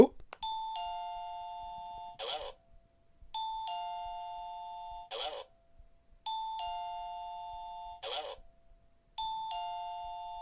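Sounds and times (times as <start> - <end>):
remote-controlled wireless doorbell chiming: 0.4 - 2.2, 3.4 - 5.1, 6.3 - 8.6, 9.2 - 10.4.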